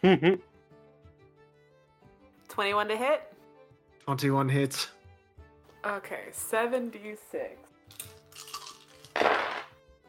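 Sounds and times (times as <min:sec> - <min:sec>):
speech: 0:00.0 - 0:00.5, 0:02.6 - 0:03.3, 0:04.0 - 0:05.0, 0:05.8 - 0:08.1
many dice clattering across a table during a tabletop role-playing game: 0:09.1 - 0:09.7.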